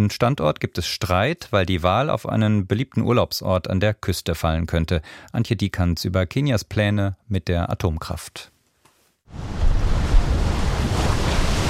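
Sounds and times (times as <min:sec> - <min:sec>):
speech: 0:00.0 - 0:08.5, 0:09.3 - 0:09.8
ocean waves crashing against a steep rock cliff: 0:09.3 - 0:11.6.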